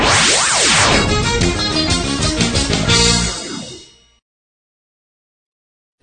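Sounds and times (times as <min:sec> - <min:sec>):
music played on radio with swooping rise-and-fall sweep: 0:00.0 - 0:04.0.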